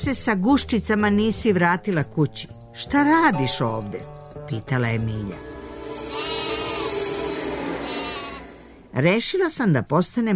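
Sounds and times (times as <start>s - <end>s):
speech: 0.0s - 5.5s, 9.0s - 10.3s
sheep bleating in a pen: 6.0s - 7.0s, 7.8s - 8.6s.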